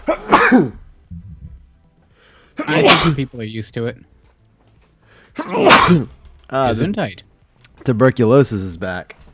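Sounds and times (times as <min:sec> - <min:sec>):
big explosive sneeze: 0:00.0 - 0:00.8, 0:02.6 - 0:03.3, 0:05.4 - 0:06.1
speech: 0:00.1 - 0:00.8, 0:02.6 - 0:04.1, 0:05.4 - 0:09.2.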